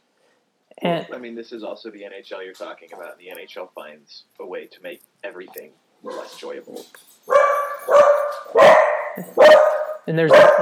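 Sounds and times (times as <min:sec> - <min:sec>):
speech: 0:00.8 - 0:10.5
dogs barking: 0:02.9 - 0:03.2, 0:06.0 - 0:06.6, 0:07.3 - 0:10.5.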